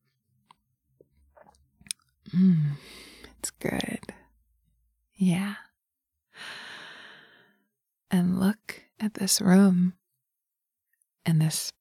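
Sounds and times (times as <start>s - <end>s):
sipping a drink: 0.5s - 3.4s
speech: 2.3s - 4.1s, 9.2s - 10.0s, 11.3s - 11.8s.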